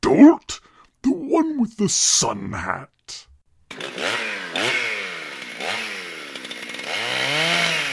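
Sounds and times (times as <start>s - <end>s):
speech: 0.1s - 3.3s
chainsaw revving: 3.7s - 7.9s.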